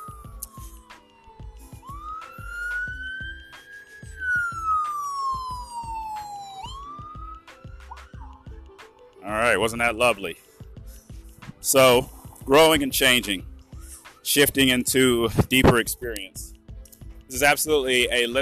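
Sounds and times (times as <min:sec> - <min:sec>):
loud wailing emergency vehicle siren passing outdoors: 0:00.0 - 0:09.4
speech: 0:09.3 - 0:10.4, 0:11.7 - 0:13.5, 0:14.3 - 0:16.6, 0:17.3 - 0:18.4.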